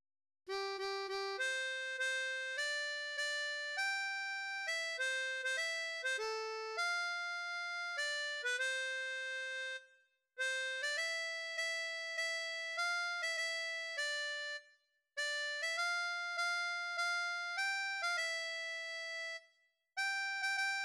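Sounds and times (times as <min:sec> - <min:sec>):
harmonica melody: 0:00.5 - 0:19.4, 0:20.0 - 0:20.8.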